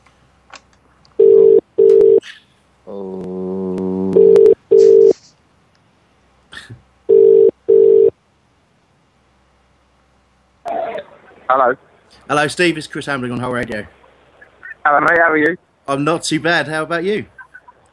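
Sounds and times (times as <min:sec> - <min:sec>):
telephone ringing tone: 0:01.2 - 0:02.2, 0:04.2 - 0:05.1, 0:07.1 - 0:08.1
speech: 0:11.6 - 0:14.0, 0:14.9 - 0:17.4.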